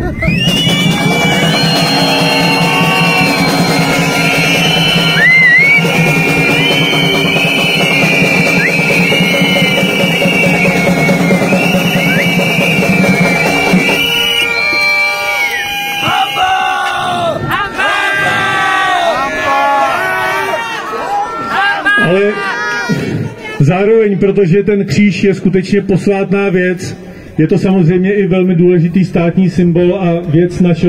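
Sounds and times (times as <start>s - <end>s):
protest crowd beating drums: 0.0s - 17.6s
protest crowd whistling: 0.0s - 17.6s
protest crowd cheering: 0.0s - 23.6s
protest crowd shouting: 0.5s - 23.6s
speech: 24.2s - 30.8s.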